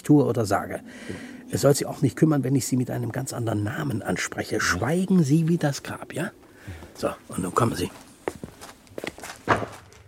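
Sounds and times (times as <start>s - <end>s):
speech: 0.0s - 8.1s
footsteps climbing a staircase: 7.9s - 10.0s.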